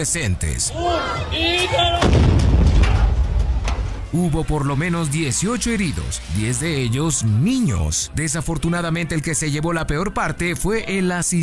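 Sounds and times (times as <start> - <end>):
speech: 0.0 - 2.5, 4.1 - 11.4
drums exploding in a physicist's experiment: 2.0 - 4.2.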